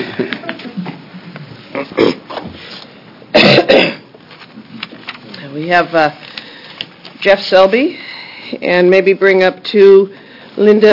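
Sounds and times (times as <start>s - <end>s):
low murmur of noise: 0.0s - 10.9s
person coughing: 1.7s - 2.3s, 3.3s - 4.1s
speech: 5.7s - 6.2s, 7.2s - 8.0s, 8.6s - 10.9s.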